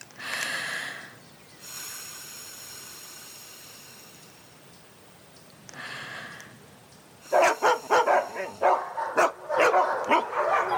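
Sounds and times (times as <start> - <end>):
more than one dog barking loudly at a dog whistle: 7.3 - 10.7.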